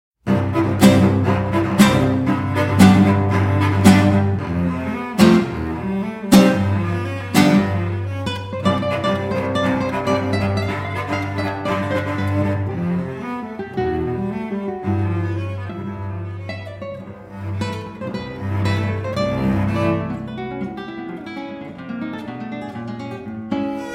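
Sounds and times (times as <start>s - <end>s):
cello: 0.2s - 23.9s
guitar: 0.2s - 23.9s.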